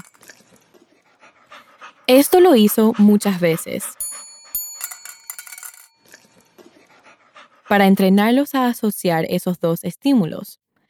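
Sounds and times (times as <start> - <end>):
dogs panting: 0.0 - 8.5
speech: 2.1 - 4.0, 7.7 - 10.6
small hand bell ringing: 4.0 - 6.4.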